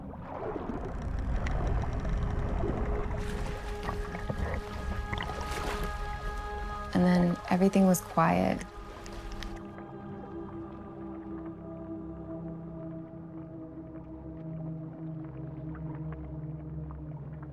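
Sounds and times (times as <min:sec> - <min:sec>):
low steady rumble of water: 0:00.0 - 0:17.5
speech: 0:07.0 - 0:08.7
dolphin clicks underwater: 0:09.0 - 0:09.6.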